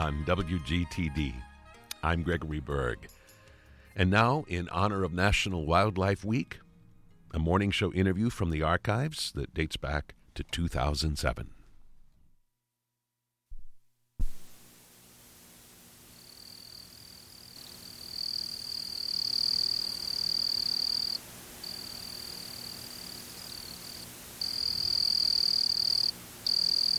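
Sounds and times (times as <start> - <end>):
speech: 0.0 - 3.2, 4.0 - 6.6, 7.3 - 11.6
brief thump: 13.5 - 14.6
Springfield cricket singing a high-pitched trill: 16.2 - 26.9.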